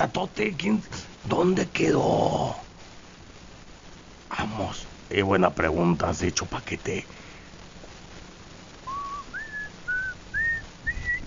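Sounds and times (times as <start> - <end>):
speech: 0.0 - 2.7, 4.3 - 7.2
person whistling short wavering notes: 8.9 - 11.2.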